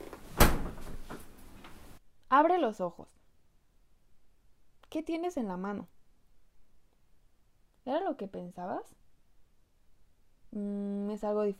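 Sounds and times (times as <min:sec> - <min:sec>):
door swinging shut with a solid thud: 0:00.0 - 0:01.3
speech: 0:02.3 - 0:03.2, 0:04.9 - 0:05.9, 0:07.9 - 0:09.0, 0:10.5 - 0:11.5.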